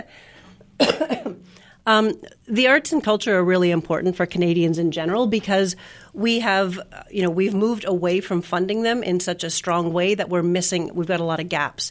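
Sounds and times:
speech: 0.0 - 1.2, 1.8 - 11.8
person hacking coughs: 0.8 - 1.5.

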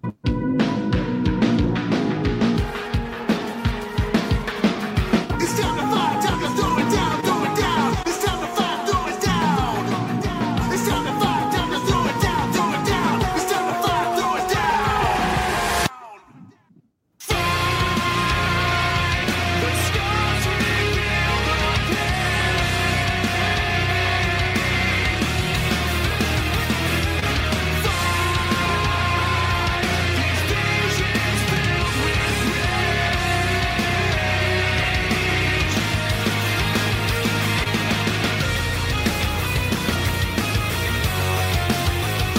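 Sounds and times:
distorted instruments: 0.0 - 42.3
person singing in a loud dense band song: 5.3 - 25.8, 27.8 - 36.0.

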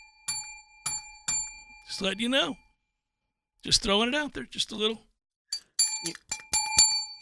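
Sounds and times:
bright small bell dinging: 0.0 - 2.7, 5.5 - 7.2
speech: 1.9 - 2.6, 3.6 - 5.1, 6.0 - 6.3.

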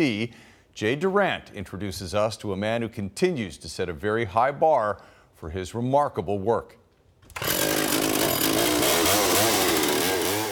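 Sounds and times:
speech: 0.0 - 6.8
chainsaw cutting wood for carving: 7.3 - 10.5.

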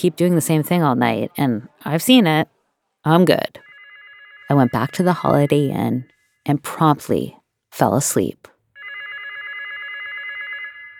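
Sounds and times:
speech: 0.0 - 3.7, 4.5 - 8.5
telephone ringing with buzzy electronic trill: 3.1 - 7.0, 8.8 - 10.9.

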